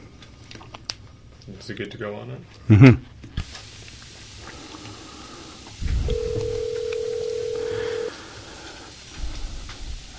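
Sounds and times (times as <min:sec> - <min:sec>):
speech: 0:01.5 - 0:03.1
steady telephone ringing tone: 0:06.0 - 0:08.1.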